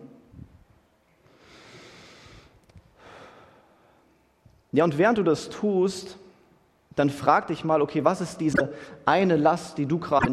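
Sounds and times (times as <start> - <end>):
long airy inhale through the nose: 1.3 - 3.8
speech: 4.7 - 6.2, 7.0 - 10.3.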